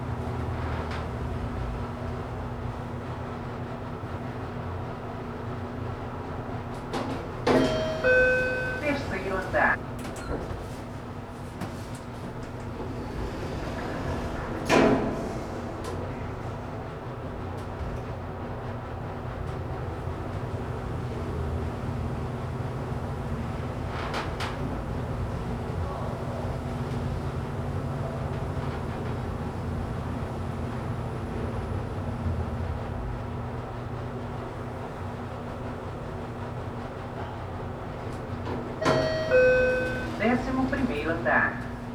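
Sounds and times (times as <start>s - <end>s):
elevator interior stopping at floors: 0.0s - 41.9s
elevator signal beep: 7.4s - 10.4s, 38.8s - 41.9s.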